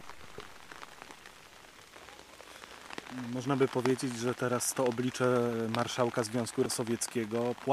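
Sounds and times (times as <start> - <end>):
steady rain pattering on hard surfaces: 0.0 - 7.7
speech: 3.2 - 7.7.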